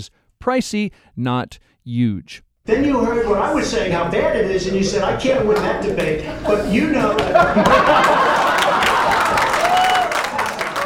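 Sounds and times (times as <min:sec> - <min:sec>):
speech: 0:00.0 - 0:08.5
laughter: 0:05.4 - 0:10.8
supporters clapping at a debate-watching event: 0:07.1 - 0:10.8.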